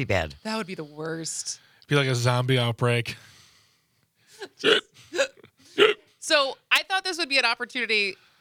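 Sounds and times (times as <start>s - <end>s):
speech: 0.0s - 3.3s, 4.4s - 8.3s
person hiccuping: 4.5s - 6.1s.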